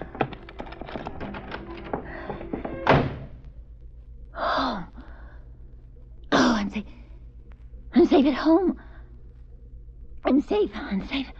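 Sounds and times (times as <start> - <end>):
lock clicking and rattling: 0.0 - 3.3
heavy thud of a door shutting as it is locked: 2.3 - 3.4
speech: 6.7 - 7.0, 8.0 - 8.9, 10.2 - 11.3.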